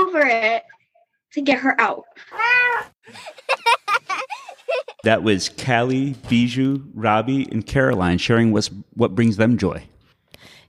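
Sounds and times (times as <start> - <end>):
speech: 0.3 - 3.8, 5.0 - 10.5
cat meowing: 2.3 - 2.9
laughter: 3.0 - 5.4.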